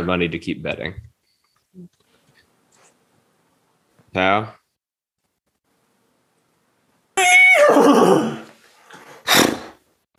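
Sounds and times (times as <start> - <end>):
speech: 0.0 - 1.1, 1.8 - 2.0, 4.1 - 4.6, 7.7 - 8.4
person's voice imitating a horse neigh: 7.2 - 8.5
short breathy snort: 9.0 - 9.8.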